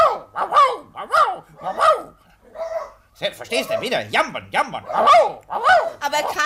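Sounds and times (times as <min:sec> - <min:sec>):
dog barking: 0:00.0 - 0:03.0, 0:04.8 - 0:06.4
speech: 0:03.2 - 0:06.4.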